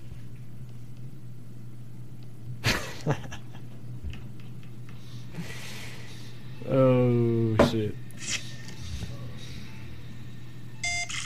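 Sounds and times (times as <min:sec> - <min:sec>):
low hum: 0:00.0 - 0:11.2
speech: 0:03.0 - 0:03.4
video game electrical wiring task beeps: 0:10.8 - 0:11.2.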